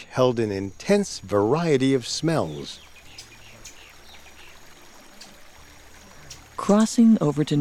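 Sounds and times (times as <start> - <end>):
brook babbling and splashing: 0.0 - 7.6
speech: 0.1 - 2.9, 6.7 - 7.6
faint bird chirps: 2.3 - 6.8.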